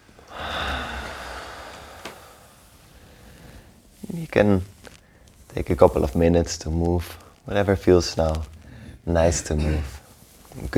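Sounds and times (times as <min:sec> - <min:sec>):
deep breath in and out during a relaxation exercise: 0:00.2 - 0:03.8
speech: 0:04.2 - 0:04.7, 0:05.6 - 0:10.0, 0:10.6 - 0:10.7.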